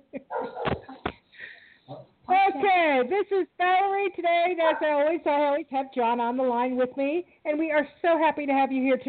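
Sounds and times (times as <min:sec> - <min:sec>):
puppies yapping: 0:00.3 - 0:00.9
speech: 0:03.0 - 0:09.0.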